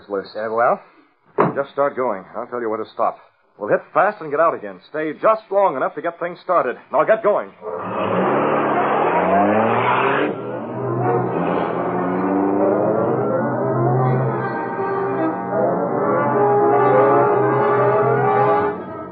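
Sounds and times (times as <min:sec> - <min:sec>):
speech: 0:00.1 - 0:07.9
powerful car engine revving through the gears and accelerating away: 0:07.6 - 0:19.1.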